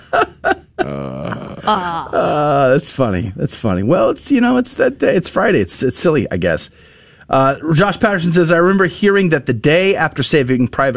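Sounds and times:
laughter: 0:00.0 - 0:02.8
person groaning and grunting: 0:00.8 - 0:02.7
speech: 0:01.7 - 0:10.9.

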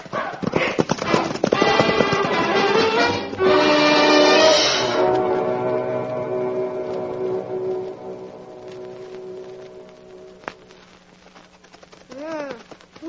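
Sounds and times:
horses' hooves clip-clopping as riders set off: 0:00.0 - 0:04.5, 0:06.9 - 0:13.0
musical backing: 0:01.0 - 0:11.0.

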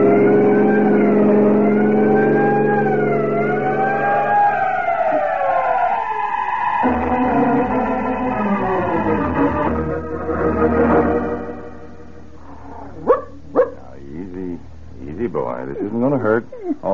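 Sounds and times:
vehicle siren wailing in rising and falling sweeps: 0:00.0 - 0:13.1
steady vehicle engine drone: 0:00.0 - 0:15.8.

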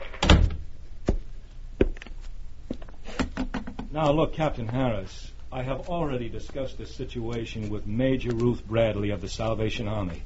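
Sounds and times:
office door swinging shut: 0:00.2 - 0:00.7
speech: 0:03.9 - 0:10.2.

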